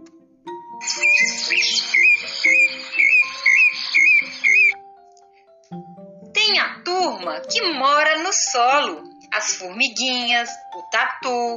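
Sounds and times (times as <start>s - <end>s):
small birds singing: 0.8s - 4.8s
speech: 7.3s - 11.5s.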